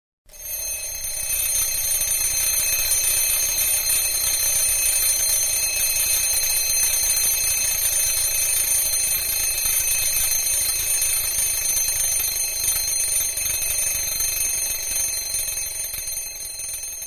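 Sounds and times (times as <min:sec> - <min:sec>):
alarm clock: 0:00.3 - 0:17.0.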